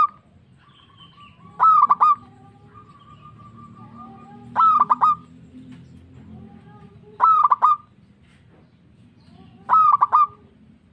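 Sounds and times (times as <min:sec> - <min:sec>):
local zebra dove cooing song: 0:00.0 - 0:05.3, 0:07.1 - 0:07.9, 0:09.6 - 0:10.6.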